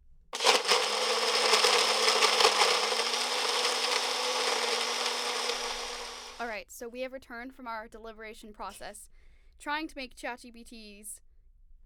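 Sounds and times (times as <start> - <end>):
kitchen blender whirring: 0.4 - 6.5
speech: 6.7 - 11.3.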